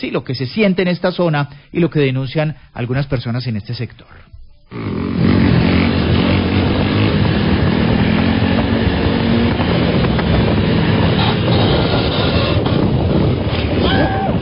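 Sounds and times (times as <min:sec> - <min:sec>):
speech: 0:00.0 - 0:05.2
motorcycles doing stunts with engines roaring: 0:04.7 - 0:14.4.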